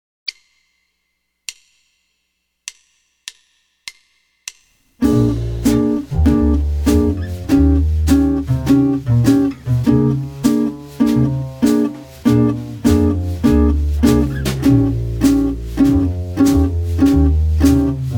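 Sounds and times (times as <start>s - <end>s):
jazz guitar B-flat major root five chord: 5.0s - 18.1s.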